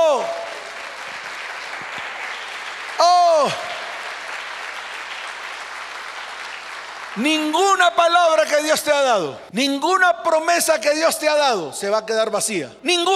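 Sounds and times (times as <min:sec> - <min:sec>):
large crowd applauding loudly: 0:00.0 - 0:08.2
speech: 0:07.2 - 0:13.1.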